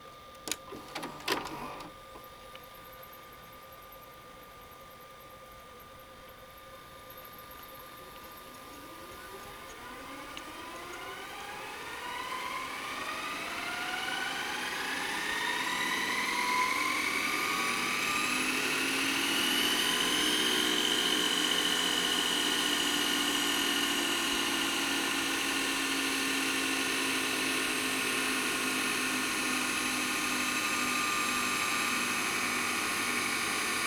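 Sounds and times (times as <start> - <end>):
VCR fast reverse: 0.4 - 2.0, 8.7 - 33.8.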